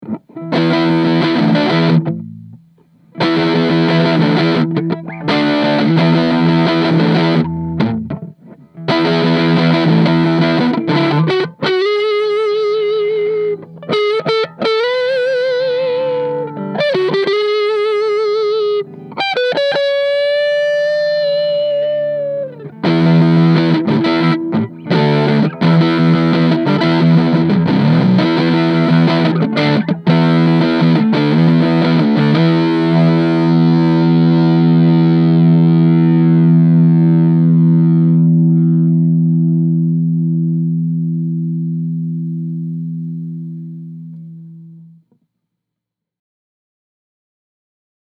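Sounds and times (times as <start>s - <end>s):
1958 Gibson Les Paul Standard Reissue electric guitar neck pickup dirty: 0.0s - 45.0s.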